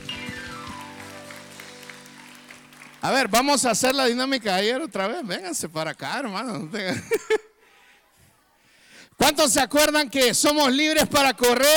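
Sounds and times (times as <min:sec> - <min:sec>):
audience applauding: 0:00.3 - 0:04.4
speech: 0:03.0 - 0:07.4, 0:09.4 - 0:11.7
laughter: 0:06.2 - 0:07.7.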